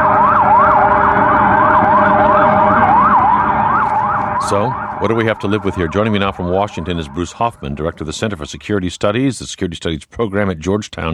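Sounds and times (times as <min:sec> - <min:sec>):
low rumble of street traffic: 0:00.0 - 0:08.5
police car sirens converging on a scene in Manhattan: 0:00.0 - 0:09.1
speech: 0:04.5 - 0:11.1.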